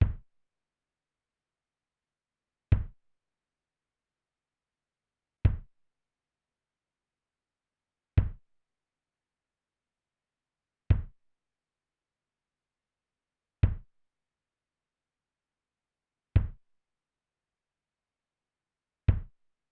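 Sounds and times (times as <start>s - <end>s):
main kick drum: 0.0s - 0.3s, 2.7s - 3.1s, 5.4s - 5.8s, 8.2s - 8.5s, 10.9s - 11.2s, 13.6s - 14.0s, 16.4s - 16.7s, 19.1s - 19.4s.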